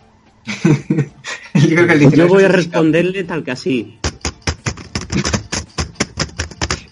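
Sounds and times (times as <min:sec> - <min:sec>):
laughter: 0:00.5 - 0:02.2
speech: 0:00.6 - 0:01.1, 0:01.7 - 0:04.0
typing on a computer keyboard: 0:04.0 - 0:06.8.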